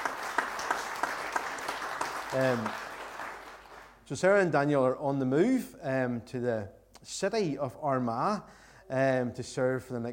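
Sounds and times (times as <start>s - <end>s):
audience applause: 0.0s - 4.0s
speech: 2.3s - 2.8s, 4.1s - 10.1s.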